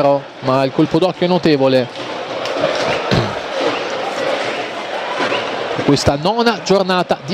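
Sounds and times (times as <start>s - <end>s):
speech: 0.0s - 2.1s, 5.9s - 7.3s
large football stadium crowd cheering and chanting: 0.0s - 7.3s.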